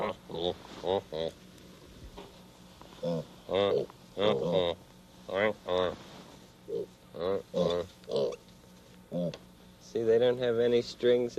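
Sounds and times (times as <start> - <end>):
month-old piglets grunting and oinking: 0.0 - 1.4, 3.0 - 6.0, 6.6 - 8.5, 9.1 - 9.5
speech: 0.4 - 1.4, 3.0 - 6.1, 6.7 - 8.4, 9.1 - 11.3.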